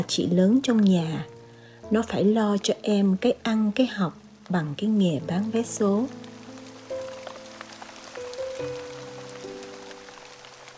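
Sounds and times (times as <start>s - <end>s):
speech: 0.0s - 6.2s
steady rain pattering on a flooded empty street: 0.0s - 10.7s.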